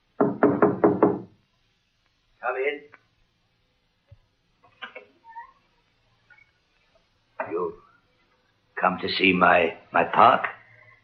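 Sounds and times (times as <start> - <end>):
knocking on the wooden door of a caretaker's cottage: 0.2 - 1.4
speech: 2.5 - 3.0, 8.8 - 10.6.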